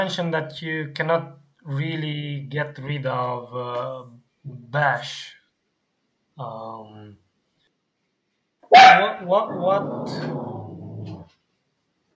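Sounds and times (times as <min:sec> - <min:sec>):
speech: 0:00.0 - 0:05.4, 0:06.4 - 0:07.2, 0:08.7 - 0:10.6
dogs barking and yelping: 0:08.7 - 0:11.3.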